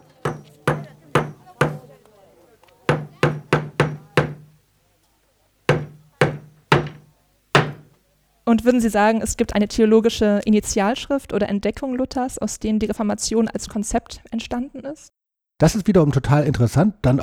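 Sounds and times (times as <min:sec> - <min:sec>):
hammer driving a nail into a wooden door: 0:00.2 - 0:01.9, 0:02.9 - 0:04.6, 0:05.7 - 0:07.9
speech: 0:08.5 - 0:17.2.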